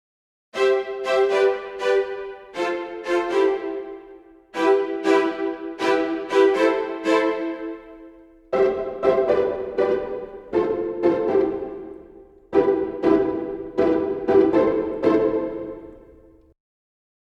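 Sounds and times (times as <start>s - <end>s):
strings playing spiccato, staccato and pizzicato: 0.6s - 16.5s.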